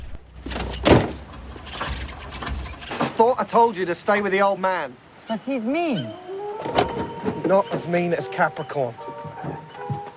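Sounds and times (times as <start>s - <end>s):
speech: 3.2s - 6.8s, 7.5s - 9.1s
car boot lid opening clunk: 6.6s - 7.9s, 9.0s - 10.1s.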